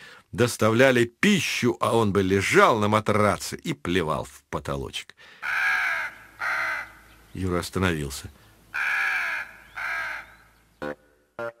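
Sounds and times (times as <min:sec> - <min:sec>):
speech: 0:00.3 - 0:05.8, 0:07.4 - 0:08.9
harsh crow-like caws from black birds circling overhead: 0:05.3 - 0:07.2, 0:08.7 - 0:10.6.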